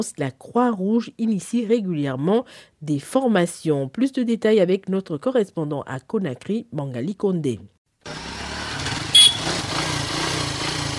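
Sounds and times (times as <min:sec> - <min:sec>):
speech: 0:00.0 - 0:08.2
motorcycle taxi engines in street traffic: 0:08.0 - 0:10.9.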